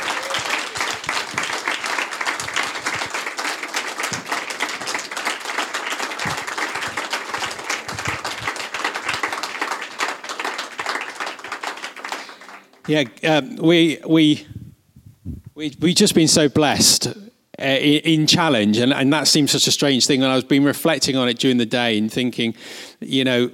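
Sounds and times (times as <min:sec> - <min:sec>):
audience applause: 0:00.0 - 0:13.1
speech: 0:12.9 - 0:14.5, 0:15.6 - 0:23.5.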